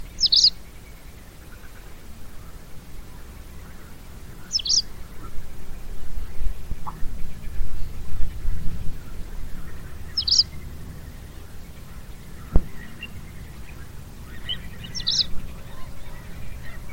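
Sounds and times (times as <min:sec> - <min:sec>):
bird chirps: 0:00.0 - 0:01.9, 0:03.7 - 0:05.3, 0:09.4 - 0:16.9
low rumbling background noise: 0:00.0 - 0:16.9.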